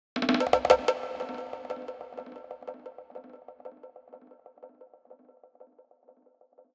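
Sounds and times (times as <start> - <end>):
drum fills: 0.2 - 2.2.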